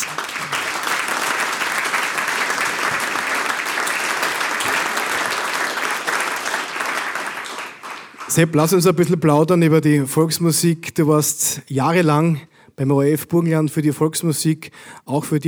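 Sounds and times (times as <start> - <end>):
large crowd applauding for a guest on stage: 0.0 - 8.7
speech: 8.4 - 15.4.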